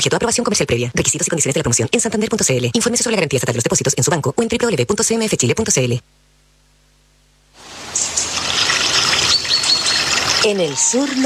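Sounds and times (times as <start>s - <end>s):
speech: 0.0s - 6.2s, 10.4s - 11.2s
water running and trickling: 7.6s - 11.2s.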